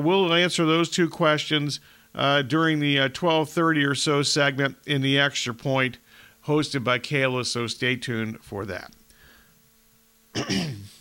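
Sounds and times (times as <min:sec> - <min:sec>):
speech: 0:00.0 - 0:09.0, 0:10.4 - 0:11.0
person clearing throat: 0:10.4 - 0:11.0.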